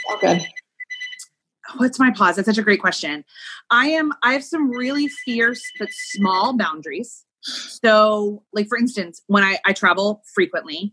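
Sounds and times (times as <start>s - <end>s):
phone ringing with electronic tones: 0.0s - 1.2s, 4.6s - 6.6s
high beeps: 0.0s - 1.3s, 4.6s - 6.7s
speech: 0.1s - 0.6s, 1.7s - 10.9s.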